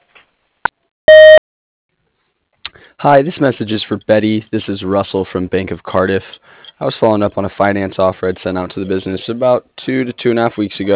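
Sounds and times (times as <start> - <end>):
voicemail recording tone beep on a phone line: 1.1 - 1.4
speech: 3.0 - 10.9.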